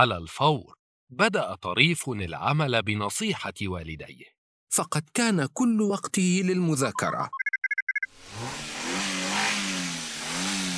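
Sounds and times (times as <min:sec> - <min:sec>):
speech: 0:00.0 - 0:07.4
electronic beeps: 0:06.9 - 0:08.1
car engine roaring to life and accelerating: 0:08.2 - 0:10.7.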